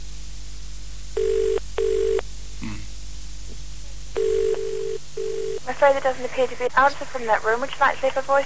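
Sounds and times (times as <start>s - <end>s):
telephone ringing tone on the line: 1.2s - 2.2s, 4.2s - 5.6s
person talking: 5.6s - 8.4s.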